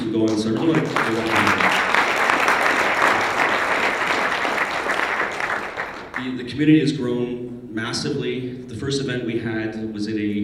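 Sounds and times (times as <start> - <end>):
speech: 0.1 - 1.7, 6.2 - 10.4
audience applause: 0.2 - 6.3.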